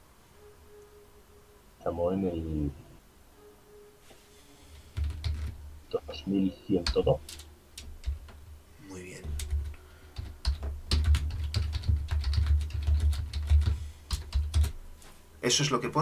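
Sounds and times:
speech: 0:01.8 - 0:02.8, 0:06.2 - 0:07.5, 0:15.5 - 0:16.0
typing on a computer keyboard: 0:05.0 - 0:05.6, 0:06.8 - 0:08.3, 0:09.2 - 0:14.8.

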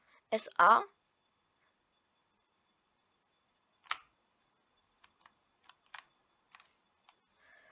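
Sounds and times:
speech: 0:00.3 - 0:01.0
computer mouse double clicks: 0:03.8 - 0:04.1, 0:05.0 - 0:07.2.

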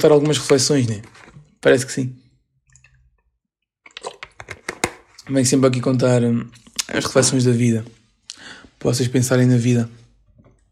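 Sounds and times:
speech: 0:00.0 - 0:02.2, 0:05.3 - 0:10.0
person drinking water with gulping swallows: 0:03.8 - 0:04.6, 0:10.2 - 0:10.7
wet mouth clicks: 0:03.9 - 0:04.4.

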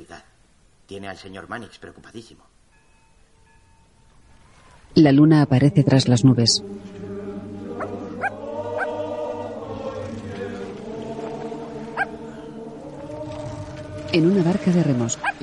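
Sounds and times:
speech: 0:00.9 - 0:02.6, 0:04.9 - 0:07.0, 0:14.1 - 0:15.4
dog giving short sharp yips and barks: 0:07.8 - 0:08.9.

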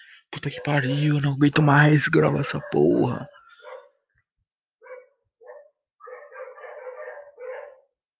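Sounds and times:
speech: 0:00.4 - 0:03.4
dog barking: 0:02.3 - 0:04.0, 0:04.8 - 0:08.0.

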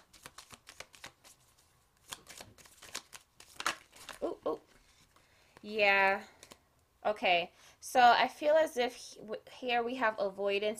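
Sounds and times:
deck of tarot cards being riffled and shuffled: 0:00.0 - 0:05.2, 0:06.4 - 0:06.6
speech: 0:05.6 - 0:06.4, 0:07.0 - 0:10.7.

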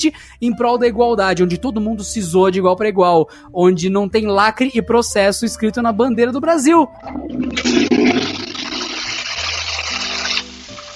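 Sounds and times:
speech: 0:00.0 - 0:08.2
toilet flushing: 0:07.0 - 0:10.9.

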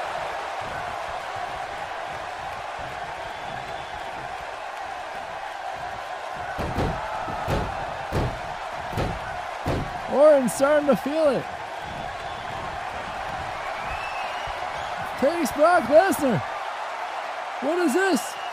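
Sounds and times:
steady wrestling crowd noise: 0:00.0 - 0:18.5
pro wrestling clothesline and power slam landing on the mat: 0:06.4 - 0:10.1
speech: 0:10.2 - 0:11.6, 0:15.3 - 0:16.5, 0:17.6 - 0:18.3.

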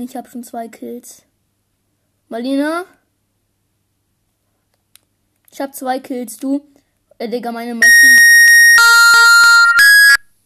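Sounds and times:
speech: 0:00.0 - 0:01.3, 0:02.3 - 0:03.0, 0:05.5 - 0:08.3
loud electronic timer alarm beeping: 0:07.8 - 0:10.2.

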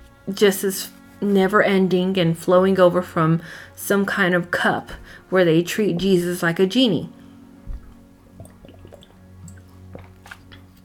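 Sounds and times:
speech: 0:00.3 - 0:07.2
person gulping a drink: 0:08.3 - 0:10.7.

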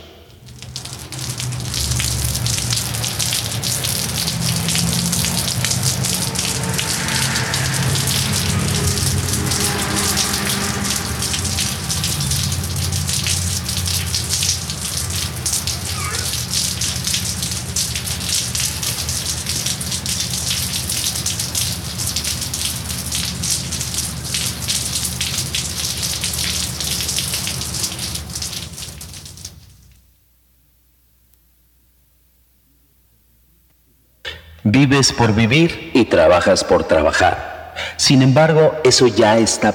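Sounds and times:
steady rain spattering on surfaces: 0:00.0 - 0:30.2
speech: 0:34.9 - 0:39.7.

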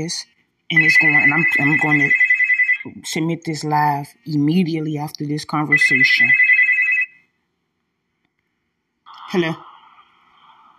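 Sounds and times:
speech: 0:00.0 - 0:02.2, 0:02.8 - 0:06.4, 0:09.3 - 0:09.7
phone ringtone of an incoming call: 0:00.7 - 0:03.0, 0:05.6 - 0:07.3.

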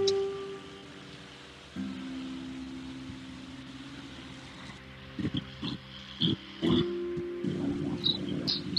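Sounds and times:
distant lawn mower or garden shredder motor droning: 0:00.0 - 0:08.7.

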